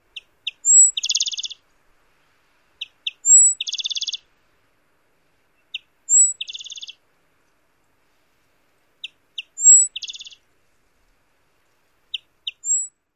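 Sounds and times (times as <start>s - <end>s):
Rufous-winged Sparrow songs: 0.1s - 1.6s, 2.8s - 4.2s, 5.5s - 7.0s, 9.0s - 10.4s, 12.1s - 13.0s.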